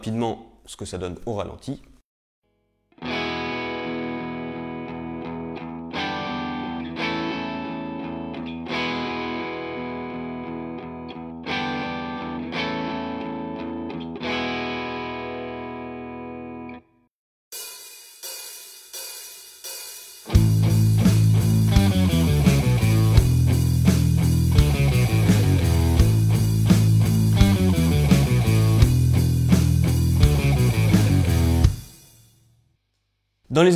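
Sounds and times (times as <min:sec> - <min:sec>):
speech: 0:00.0 - 0:01.9, 0:33.6 - 0:33.7
distorted electric guitar chords over open low E string: 0:03.0 - 0:16.8, 0:20.3 - 0:32.0.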